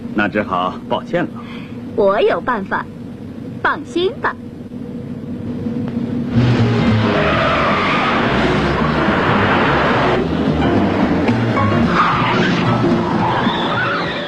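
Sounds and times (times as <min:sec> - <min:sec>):
car engines roaring in a car chase: 0:00.0 - 0:14.2
speech: 0:00.2 - 0:03.0, 0:03.6 - 0:04.4
car tyres skidding in a car chase: 0:05.7 - 0:14.2.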